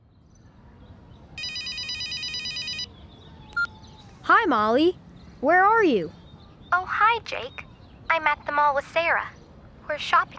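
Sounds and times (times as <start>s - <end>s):
telephone ringing with trilling electronic bell: 1.4s - 2.9s
speech: 4.4s - 10.3s.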